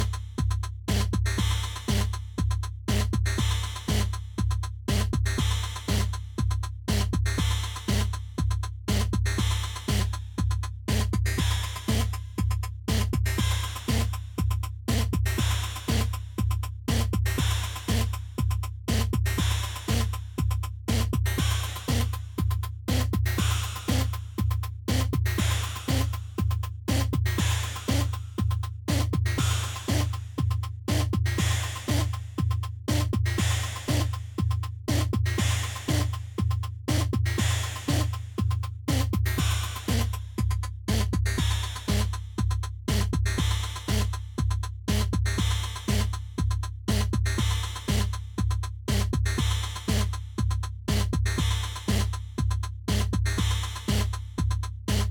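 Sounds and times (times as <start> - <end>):
drum: 0.0 - 55.0.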